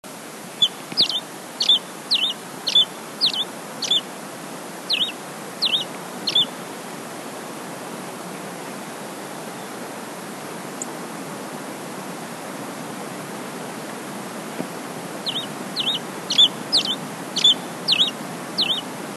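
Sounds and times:
black hooded sierra finch calling: 0.6s - 4.1s, 4.9s - 6.6s, 15.2s - 18.9s.

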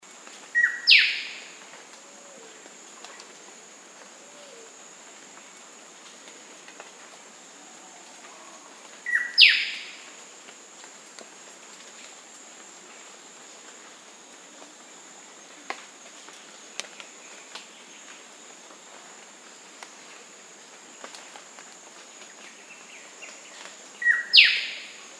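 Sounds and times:
black-sided robin calling: 0.6s - 1.4s, 8.4s - 10.0s, 24.0s - 24.9s.

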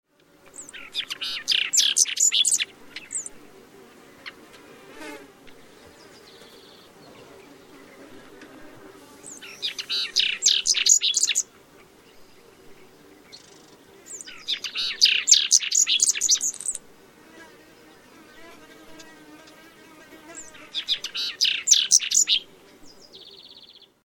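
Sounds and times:
lark-like bunting: 0.5s - 4.5s, 5.6s - 16.8s, 20.3s - 23.9s.

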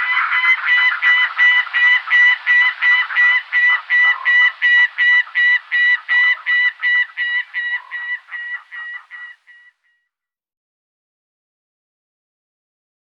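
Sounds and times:
gyrfalcon cackling: 0.0s - 9.8s.

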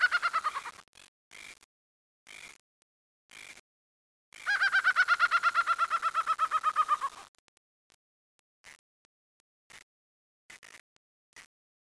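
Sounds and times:
laughing falcon giving nasal laughing notes: 0.0s - 0.7s, 4.5s - 7.2s.

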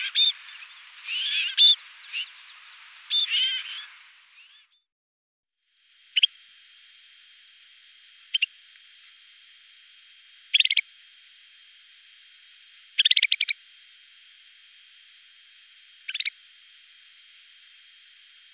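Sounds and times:
snowfinch calls in short bursts of rapid notes: 0.0s - 4.8s, 6.0s - 9.3s, 10.2s - 11.2s, 12.3s - 13.8s, 15.2s - 18.5s.

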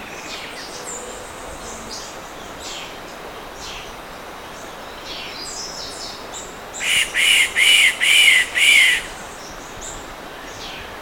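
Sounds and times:
steady background hiss: 0.0s - 11.0s
yellow-throated woodpecker rasping notes: 6.8s - 9.1s.

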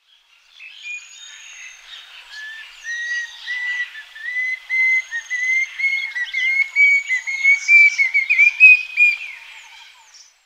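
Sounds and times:
banded bay cuckoo calling: 2.9s - 9.6s.

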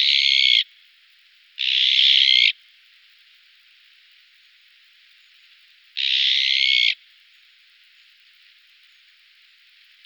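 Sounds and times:
azure-winged magpie buzzy rasping call: 0.0s - 0.6s, 1.6s - 2.6s, 6.0s - 7.0s.

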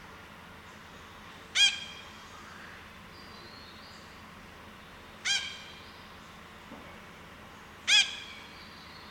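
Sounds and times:
steady background hiss: 0.0s - 9.0s
red-breasted parakeet giving harsh screechy calls: 1.6s - 2.0s, 7.9s - 8.5s.

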